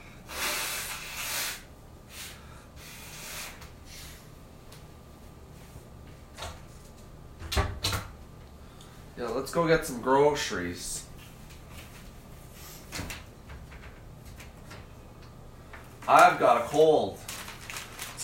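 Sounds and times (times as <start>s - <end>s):
nose blowing into a tissue: 0.3s - 4.2s
speech: 9.2s - 11.0s, 16.1s - 17.2s.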